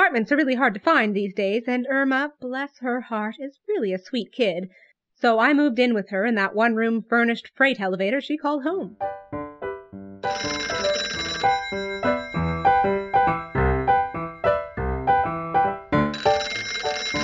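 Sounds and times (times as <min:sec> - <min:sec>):
speech: 0:00.1 - 0:09.3, 0:10.2 - 0:10.9
telephone ringing with bright bell-like tones: 0:10.2 - 0:14.8, 0:16.0 - 0:17.2.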